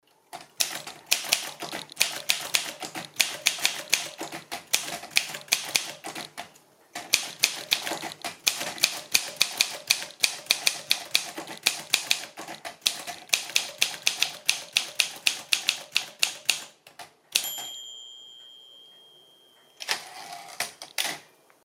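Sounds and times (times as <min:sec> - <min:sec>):
Olympia Modell SM3 typewriter typing: 0:00.4 - 0:17.7, 0:19.8 - 0:21.4.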